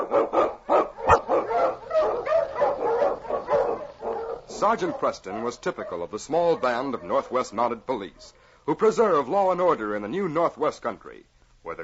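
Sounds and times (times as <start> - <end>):
husky Eskimo lead sled dog barking and yelping: 0.0 - 7.4
speech: 4.6 - 11.8.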